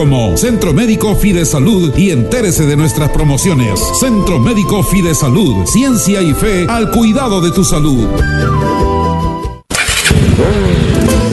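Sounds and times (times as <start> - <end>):
speech: 0.0 - 9.0, 10.1 - 10.9
motorcycle engine idling and revving: 9.7 - 11.3.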